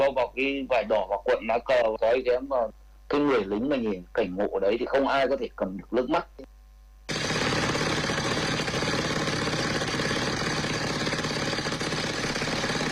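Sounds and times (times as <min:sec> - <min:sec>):
speech: 0:00.1 - 0:06.5
concrete drill breaking large rocks in mountain forest: 0:07.1 - 0:12.9.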